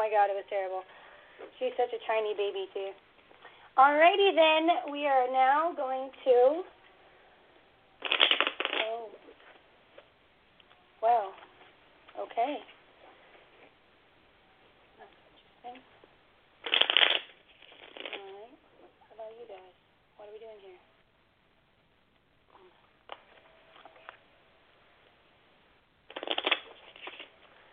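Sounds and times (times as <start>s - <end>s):
speech: 0.0s - 3.1s, 3.8s - 6.8s, 11.0s - 11.4s, 12.2s - 12.7s
deck of cards riffle-shuffled: 8.0s - 8.9s, 16.6s - 18.3s, 26.1s - 27.3s
soft vocal noises: 22.4s - 23.0s.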